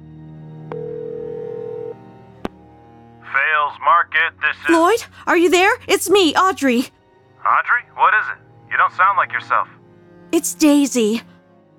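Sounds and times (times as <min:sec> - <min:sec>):
low telephone line hum: 0:00.7 - 0:02.0
speech: 0:03.7 - 0:11.3.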